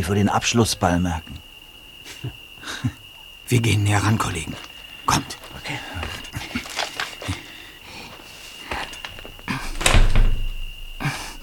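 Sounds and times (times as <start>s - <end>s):
speech: 0.0s - 1.4s, 2.2s - 6.6s
locked door handle of a derelict burnt-out house rattling: 9.0s - 11.0s.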